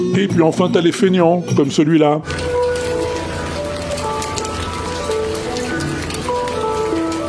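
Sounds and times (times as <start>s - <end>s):
speech: 0.2s - 2.4s
hail falling on a handpan outdoors: 2.3s - 7.2s.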